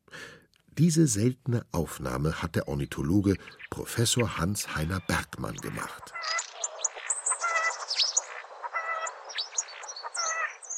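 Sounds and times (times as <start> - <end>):
speech: 0.8 - 6.4
starling chattering and mimicking other birds' calls: 2.4 - 9.3.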